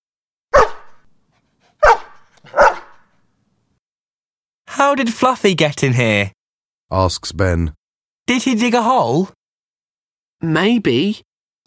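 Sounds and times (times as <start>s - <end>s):
dog barking: 0.5s - 1.0s, 1.7s - 3.2s
speech: 4.8s - 9.4s, 10.4s - 11.6s.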